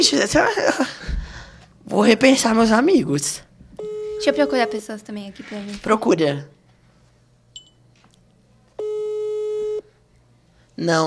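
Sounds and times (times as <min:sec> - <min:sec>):
speech: 0:00.0 - 0:01.2, 0:01.9 - 0:03.5, 0:04.2 - 0:06.6, 0:10.8 - 0:11.0
unanswered telephone ringback tone: 0:03.8 - 0:04.9, 0:08.8 - 0:09.9.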